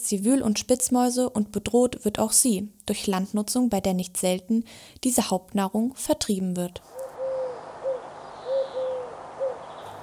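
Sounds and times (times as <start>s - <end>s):
speech: 0.1s - 7.1s
owl hooting: 6.9s - 10.0s.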